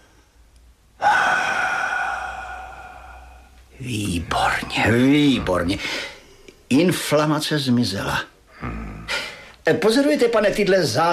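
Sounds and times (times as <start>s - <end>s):
loud forceful breathy exhale: 1.0s - 3.6s
speech: 3.8s - 6.1s, 6.7s - 8.7s, 9.7s - 11.1s.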